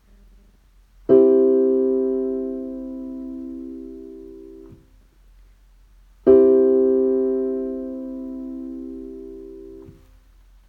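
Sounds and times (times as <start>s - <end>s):
C major chord of C E G: 1.1s - 4.8s, 6.3s - 10.0s.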